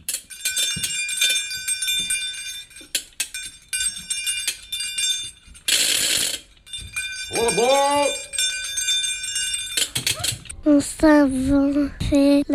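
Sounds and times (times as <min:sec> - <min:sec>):
small bells played as instruments jangling: 0:00.0 - 0:10.6
speech: 0:07.4 - 0:08.2, 0:10.6 - 0:12.5.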